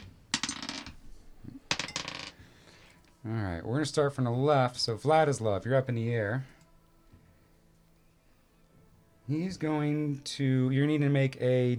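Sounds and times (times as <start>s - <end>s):
dice clattering across a hard tabletop during a tabletop role-playing game: 0.0s - 1.1s, 1.7s - 2.4s
speech: 3.2s - 6.5s, 9.3s - 11.7s.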